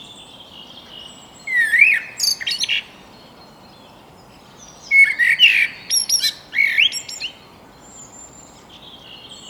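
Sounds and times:
Eurasian blackbird Turdus merula singing: 0:00.0 - 0:09.4.

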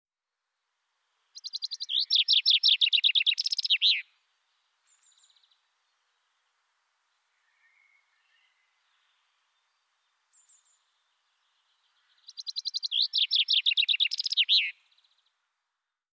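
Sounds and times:
common chaffinch Fringilla coelebs singing: 0:01.4 - 0:06.3, 0:07.4 - 0:15.3.

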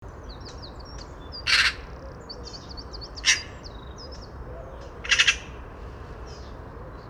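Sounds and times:
small birds twittering faintly: 0:00.1 - 0:05.6
Eurasian magpie (Pica pica) giving harsh chattering calls: 0:03.2 - 0:03.6, 0:05.0 - 0:05.6.

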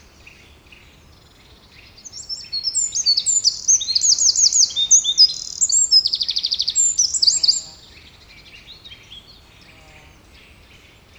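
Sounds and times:
Troglodytes troglodytes Eurasian wren song: 0:02.0 - 0:07.8.

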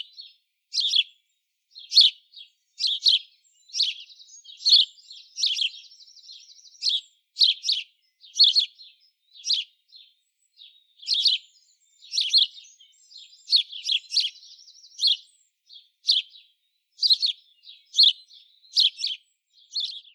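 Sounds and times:
House Sparrow Passer domesticus giving bright cheeps: 0:00.0 - 0:20.1.

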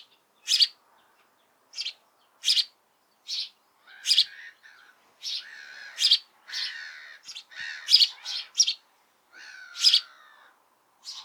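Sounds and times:
house sparrow Passer domesticus chirping: 0:00.0 - 0:00.8, 0:01.7 - 0:02.7, 0:03.3 - 0:04.4, 0:05.2 - 0:08.8, 0:09.8 - 0:10.1, 0:11.0 - 0:11.2.

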